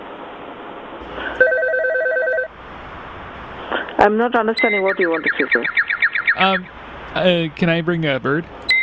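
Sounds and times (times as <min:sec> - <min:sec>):
mobile phone ringing with a short electronic ringtone: 0:01.4 - 0:02.5
speech: 0:04.0 - 0:05.8, 0:06.4 - 0:08.6.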